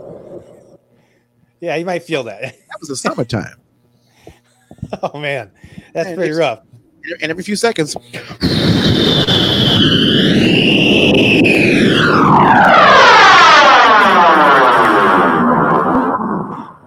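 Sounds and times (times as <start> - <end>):
speech: 1.6 - 3.6, 4.8 - 13.0
airplane passing low near an active runway: 8.1 - 16.8.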